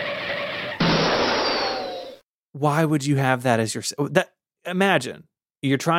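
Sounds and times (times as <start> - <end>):
Mac OS crash chime mimicking a car crash on Power Mac 6100 and 7100: 0.8 - 2.2
speech: 2.6 - 5.9.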